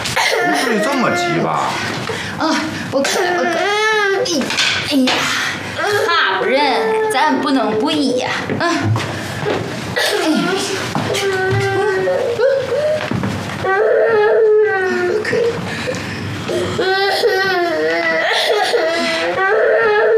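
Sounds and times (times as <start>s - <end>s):
young child crying and wailing: 0.2s - 1.6s, 2.4s - 4.5s, 5.8s - 8.9s, 10.0s - 13.0s, 13.6s - 15.6s, 16.5s - 20.1s
speech: 0.7s - 11.5s.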